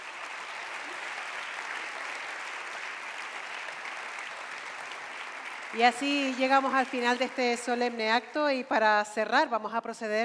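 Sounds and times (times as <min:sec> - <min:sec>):
large audience applause after a musical performance: 0:00.0 - 0:08.2
speech: 0:05.7 - 0:10.2.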